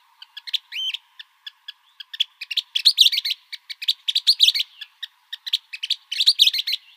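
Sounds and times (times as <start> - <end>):
Western kingbird calling in Arizona: 0.0 - 6.9
faint steady hum: 0.0 - 6.9.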